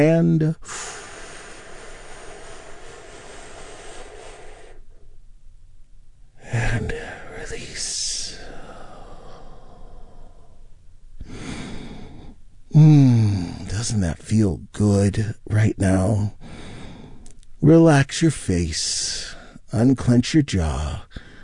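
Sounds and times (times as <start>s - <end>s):
speech: 0.0s - 1.0s, 12.8s - 13.1s, 13.8s - 16.5s, 17.6s - 21.2s
soft hiss: 0.4s - 21.4s
deep breath taken during a guided relaxation exercise: 0.6s - 5.2s, 8.3s - 13.7s, 16.4s - 17.4s, 21.1s - 21.4s.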